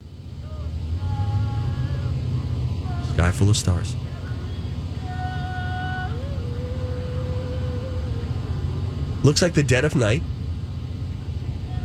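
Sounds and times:
passing car traffic outdoors: 0:00.0 - 0:11.8
speech: 0:03.2 - 0:04.0, 0:09.2 - 0:10.4.

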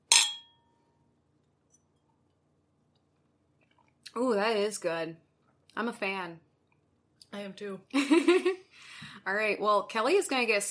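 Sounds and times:
glasses clinking in a toast: 0:00.0 - 0:00.6
speech: 0:04.2 - 0:05.2, 0:05.8 - 0:06.5, 0:07.3 - 0:10.6.

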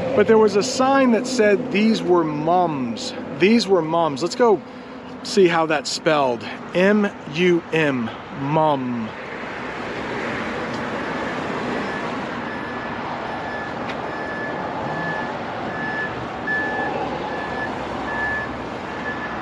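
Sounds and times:
speech: 0:00.2 - 0:09.2
truck reversing alarm beeping: 0:11.1 - 0:19.3.

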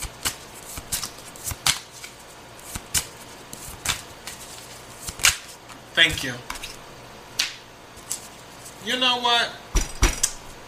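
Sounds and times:
deck of cards shuffled during a horoscope card reading: 0:00.0 - 0:06.8, 0:07.4 - 0:08.8
speech: 0:06.0 - 0:06.5, 0:08.8 - 0:09.6.

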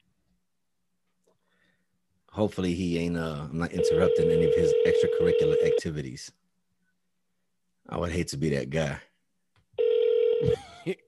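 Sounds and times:
speech: 0:02.4 - 0:06.4, 0:07.9 - 0:09.1, 0:10.4 - 0:11.0
phone ringback tone of an outgoing call: 0:03.8 - 0:05.8, 0:09.8 - 0:10.6
person muttering: 0:10.4 - 0:11.0.

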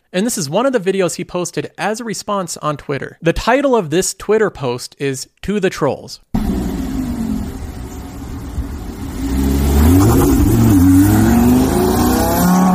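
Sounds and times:
speech: 0:00.1 - 0:06.3
car revving and driving away: 0:06.4 - 0:12.7.

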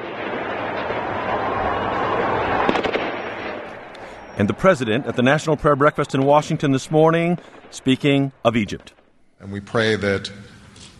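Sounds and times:
gunfire at night: 0:00.0 - 0:04.4, 0:06.2 - 0:09.2
outdoor crowd noise at night: 0:00.0 - 0:10.9
speech: 0:04.4 - 0:10.6.

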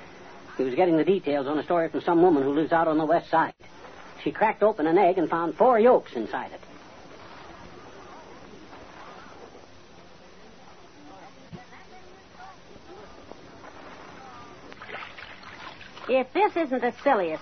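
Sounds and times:
speech: 0:00.6 - 0:06.7, 0:16.1 - 0:17.4
rowboat oars splashing through choppy water: 0:13.6 - 0:16.2.

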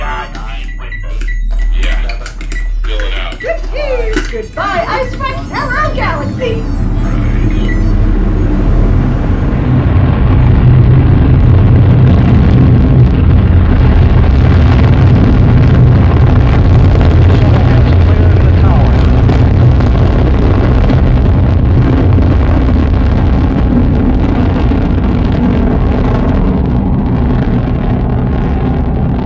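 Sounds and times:
electronic beeps: 0:00.0 - 0:09.6
warbling tones: 0:00.0 - 0:29.0
spaceship engines firing up for launch: 0:00.0 - 0:29.2
speech: 0:04.3 - 0:06.9.

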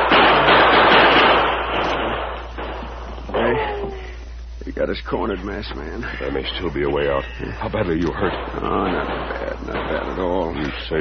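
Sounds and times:
gunfire barrage from bandits besieging a dugout: 0:00.0 - 0:03.6, 0:08.0 - 0:10.7
person shouting: 0:03.4 - 0:04.1
speech: 0:04.8 - 0:10.9.

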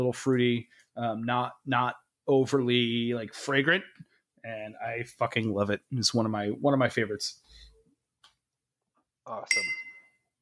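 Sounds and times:
speech: 0:00.0 - 0:07.7, 0:09.3 - 0:09.8
glass clink from a person toasting alone with a glass of pisco: 0:09.5 - 0:10.2.

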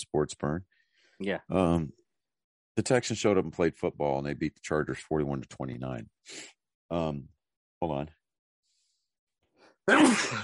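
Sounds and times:
speech: 0:00.0 - 0:02.0, 0:02.8 - 0:08.2, 0:09.9 - 0:10.4
person sneezing: 0:09.9 - 0:10.4.

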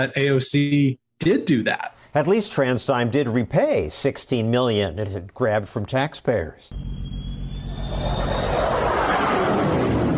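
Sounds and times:
speech: 0:00.0 - 0:07.0, 0:07.9 - 0:08.7
F-35 fighter jet roaring past overhead: 0:07.2 - 0:10.1.

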